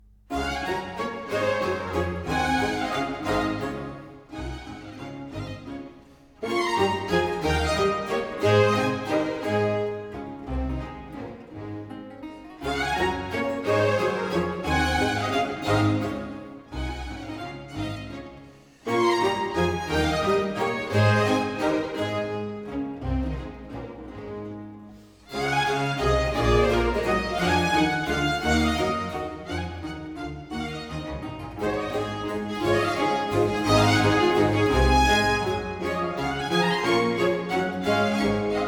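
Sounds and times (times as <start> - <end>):
strings playing a sinfonia allegro: 0.0 - 38.6
bassoon: 0.3 - 5.8, 6.4 - 24.6, 25.3 - 38.6.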